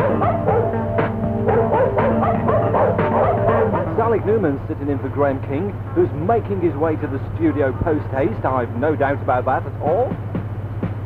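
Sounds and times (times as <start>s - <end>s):
dog barking in loud yaps: 0.0s - 0.8s, 1.5s - 3.9s
constant humming background: 0.0s - 11.0s
speech: 4.2s - 10.3s.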